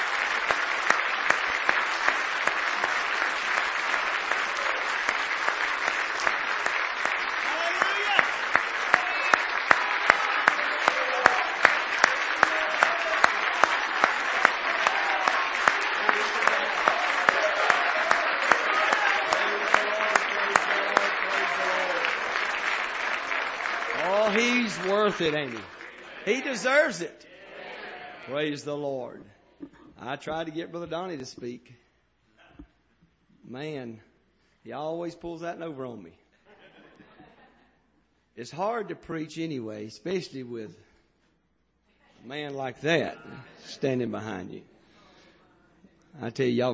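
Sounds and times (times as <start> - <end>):
room full of people applauding: 0.0 - 27.1
speech: 24.8 - 27.2, 28.3 - 29.4, 30.0 - 31.8, 33.5 - 36.2, 38.4 - 40.8, 42.2 - 44.7, 46.2 - 46.7.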